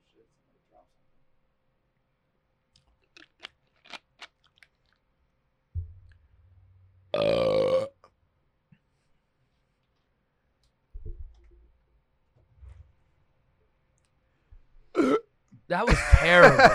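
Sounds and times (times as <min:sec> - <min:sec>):
soft low thumps: 0:05.8 - 0:07.1, 0:11.0 - 0:11.6
loud forced burp after chugging soda: 0:07.2 - 0:08.0, 0:15.0 - 0:15.2
laughter: 0:15.8 - 0:16.7.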